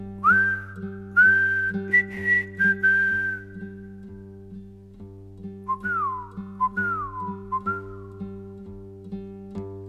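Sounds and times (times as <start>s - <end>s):
person whistling a soldier song refrain as a secret recognition signal: 0.2s - 4.0s, 5.7s - 8.2s.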